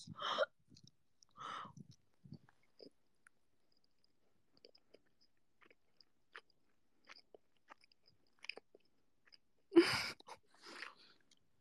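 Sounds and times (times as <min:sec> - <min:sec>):
chewing of food with wet mouth clicks: 0:00.7 - 0:11.5
crunching bite: 0:04.6 - 0:09.4.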